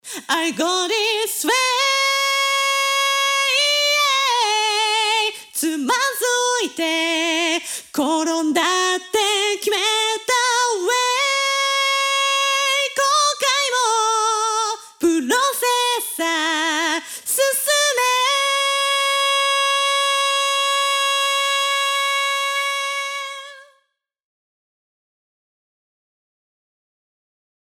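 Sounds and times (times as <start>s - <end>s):
vocal: 0.0s - 23.8s.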